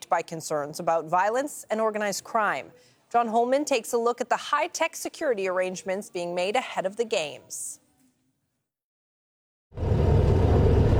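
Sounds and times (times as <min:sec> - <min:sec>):
speech: 0:00.1 - 0:07.8
armored car engine running: 0:09.8 - 0:10.9.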